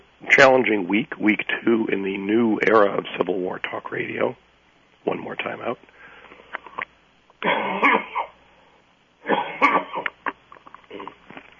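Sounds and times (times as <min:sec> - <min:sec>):
speech: 0:00.3 - 0:04.4, 0:05.0 - 0:05.9, 0:07.4 - 0:08.1
person coughing harshly: 0:07.4 - 0:08.4, 0:09.2 - 0:10.2.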